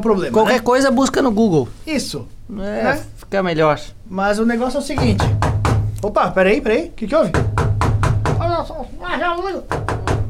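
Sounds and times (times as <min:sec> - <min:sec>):
speech: 0:00.0 - 0:05.4, 0:06.0 - 0:07.6, 0:08.6 - 0:09.9
knocking on a door: 0:04.8 - 0:06.0, 0:07.2 - 0:08.8, 0:09.6 - 0:10.2.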